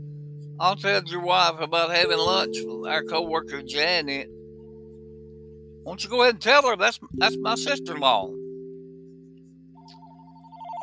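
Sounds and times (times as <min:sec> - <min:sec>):
steady low hum: 0:00.0 - 0:09.8
speech: 0:00.6 - 0:04.4, 0:05.8 - 0:08.4
telephone ringing with rapid pulsing electronic warble: 0:09.8 - 0:10.8.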